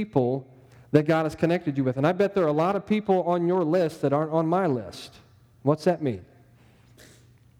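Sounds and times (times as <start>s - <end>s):
speech: 0.0s - 6.3s
audience member sneezing: 6.9s - 7.3s.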